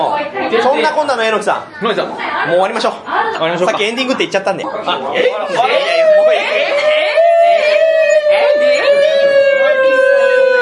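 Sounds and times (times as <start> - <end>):
speech: 0.5 - 6.1
people chuckling and murmuring: 3.0 - 10.5
dog in heat howling and whimpering: 5.5 - 10.5.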